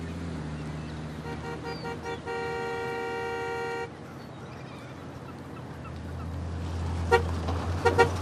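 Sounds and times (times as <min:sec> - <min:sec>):
car engine rumbling as it pulls away: 0:00.0 - 0:01.9, 0:05.9 - 0:08.1
heavier pickup truck engine approaching: 0:00.0 - 0:08.1
horn honking: 0:01.1 - 0:04.0, 0:07.0 - 0:08.1.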